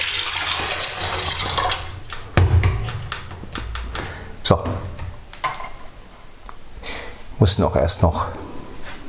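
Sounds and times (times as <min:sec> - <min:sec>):
tap water running into an electric kettle: 0:00.0 - 0:02.1
speech: 0:04.5 - 0:05.0, 0:07.4 - 0:08.6.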